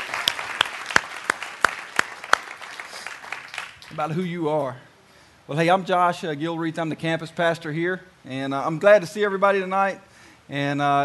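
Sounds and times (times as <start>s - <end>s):
audience clapping at a church service after a song: 0.0s - 4.1s
speech: 3.9s - 4.9s, 5.5s - 11.0s.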